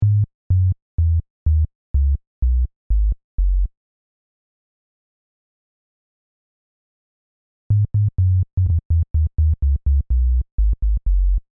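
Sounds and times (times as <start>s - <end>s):
plodding bass: 0.0s - 3.7s, 7.7s - 11.4s.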